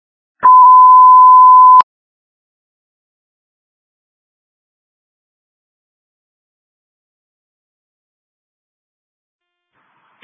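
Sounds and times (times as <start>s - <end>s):
electronic phone ringtone beep: 0.4s - 1.8s.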